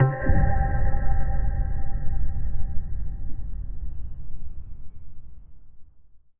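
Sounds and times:
ping tone: 0.0 - 2.0
impact boom: 0.0 - 6.1.

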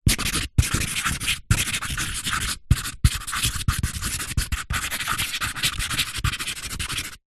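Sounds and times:
office highlighter marker pen writing fast on cardboard: 0.0 - 7.2.

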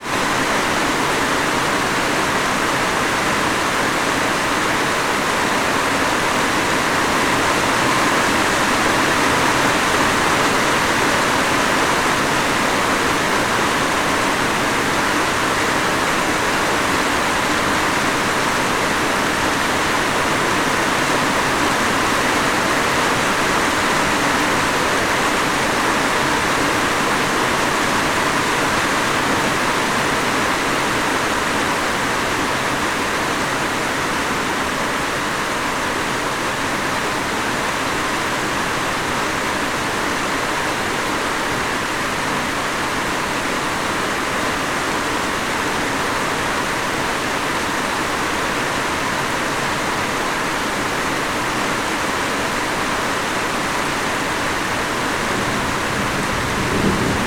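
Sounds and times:
heavy tropical rain: 0.0 - 57.2
distant thunder: 55.4 - 57.2.

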